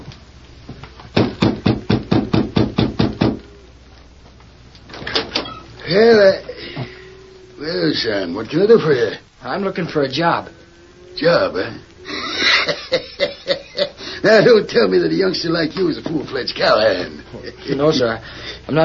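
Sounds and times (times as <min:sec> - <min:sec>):
knocking on a wooden door: 0:01.2 - 0:03.4
speech: 0:05.9 - 0:06.2, 0:08.0 - 0:10.6, 0:11.2 - 0:11.9, 0:14.2 - 0:18.8
laughter: 0:12.0 - 0:14.7, 0:16.8 - 0:18.2.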